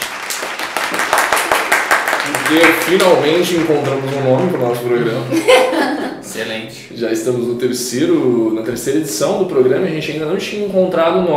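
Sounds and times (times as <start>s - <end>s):
hands clapping: 0.0s - 5.0s
speech: 2.5s - 11.3s
laughter: 4.8s - 6.4s.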